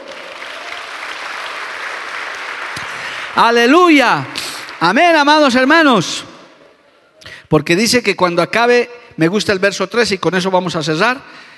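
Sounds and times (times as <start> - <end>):
congregation applauding: 0.0 - 5.9
speech: 3.4 - 6.3, 7.5 - 11.5.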